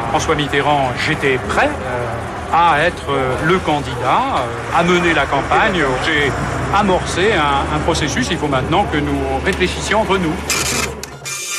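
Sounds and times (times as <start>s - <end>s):
speech: 0.2s - 10.9s
fax machine printing: 10.5s - 11.5s.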